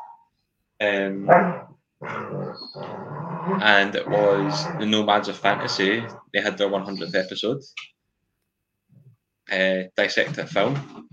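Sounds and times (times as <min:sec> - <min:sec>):
speech: 0:00.8 - 0:08.0, 0:09.5 - 0:11.1
dog making growly whining noises in a room: 0:01.2 - 0:07.2.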